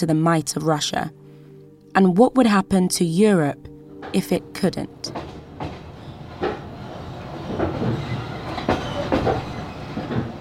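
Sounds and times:
speech: 0:00.0 - 0:01.2, 0:02.0 - 0:05.2
train travelling on rails towards Kyiv: 0:04.0 - 0:10.3
train wheels clicking and clacking over track joints: 0:04.0 - 0:10.3.

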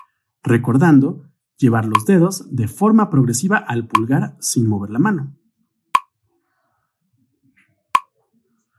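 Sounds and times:
speech: 0:00.4 - 0:05.4
metronome ticks: 0:01.9 - 0:02.3, 0:03.9 - 0:04.2.

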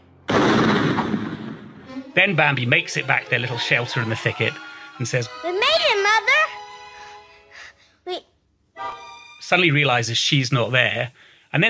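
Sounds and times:
single gunshot with rumbling echo: 0:00.3 - 0:01.9
speech: 0:02.2 - 0:06.5, 0:08.0 - 0:11.6.

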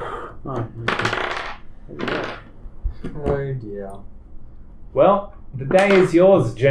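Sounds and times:
speech: 0:00.4 - 0:01.2, 0:03.0 - 0:04.2, 0:04.9 - 0:06.6
d20 die clattering and tumbling across a tabletop: 0:00.9 - 0:02.5.

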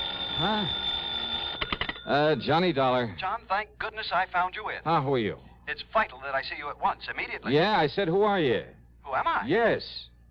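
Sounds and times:
telephone ringing: 0:00.0 - 0:02.8
speech: 0:00.4 - 0:00.8, 0:02.1 - 0:10.1.

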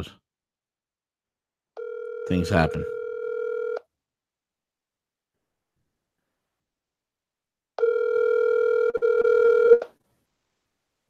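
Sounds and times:
speech: 0:00.0 - 0:00.2, 0:02.3 - 0:03.0
phone line ringback tone on an outgoing call: 0:01.8 - 0:03.8, 0:07.8 - 0:09.8.

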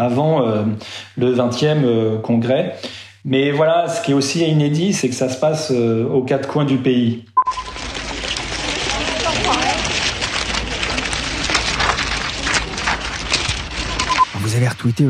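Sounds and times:
speech: 0:00.0 - 0:07.6, 0:14.6 - 0:15.0
white paper sheets waved by protesters in China flapping in the wind: 0:07.5 - 0:15.0.

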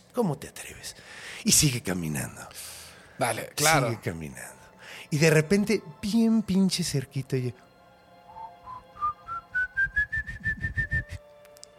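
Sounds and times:
speech: 0:00.2 - 0:07.7
eerie whistled tune imitating a ghost: 0:08.3 - 0:11.3.

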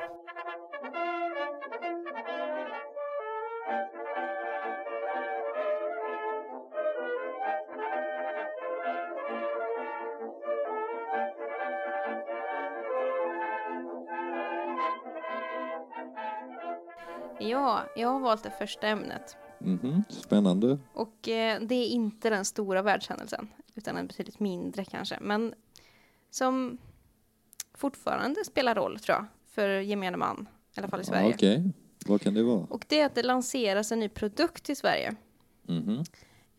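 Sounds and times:
instrumental music interlude with brass-like tones: 0:00.0 - 0:21.0
speech: 0:17.4 - 0:25.6, 0:26.3 - 0:26.9, 0:27.8 - 0:36.5
laughter: 0:19.6 - 0:20.7, 0:35.7 - 0:36.0.

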